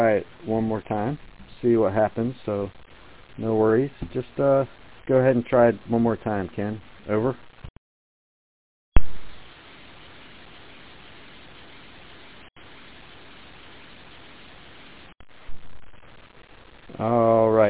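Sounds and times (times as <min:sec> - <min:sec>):
speech: 0:00.0 - 0:02.8, 0:03.4 - 0:07.5, 0:17.0 - 0:17.6
radio static during a radio transmission attempt: 0:00.0 - 0:07.7, 0:11.6 - 0:17.6.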